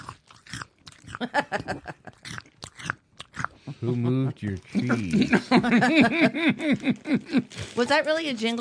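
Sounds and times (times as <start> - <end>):
person munching crunchy cheese puff snacks: 0.0 - 1.2, 2.2 - 3.6
speech: 1.2 - 2.0, 3.8 - 8.5
laughter: 1.2 - 2.2, 3.7 - 7.6.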